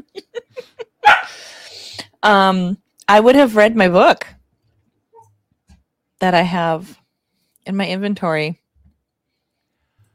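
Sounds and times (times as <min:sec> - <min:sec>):
puppy barking: 0:01.0 - 0:01.4
speech: 0:02.2 - 0:04.3, 0:06.2 - 0:07.0, 0:07.7 - 0:08.6.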